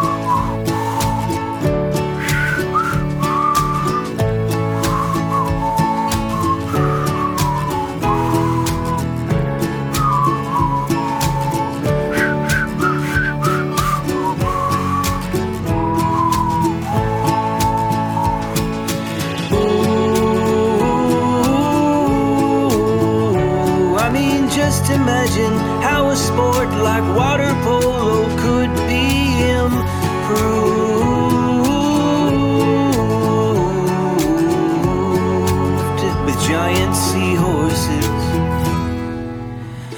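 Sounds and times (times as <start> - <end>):
full steady instrumental backing: 0.0 - 39.9
whistled melody: 0.0 - 39.9.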